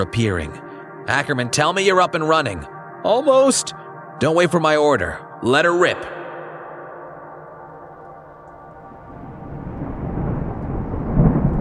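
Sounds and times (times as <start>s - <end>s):
speech: 0.0s - 6.2s
deep rolling thunder with lightning: 8.8s - 11.5s
heavy rain lashing against thick glass: 9.0s - 11.5s.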